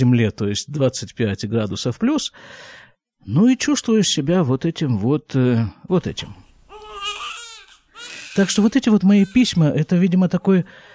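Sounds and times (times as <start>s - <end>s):
speech: 0.0s - 6.4s, 8.4s - 10.9s
newborn baby crying: 6.7s - 9.7s.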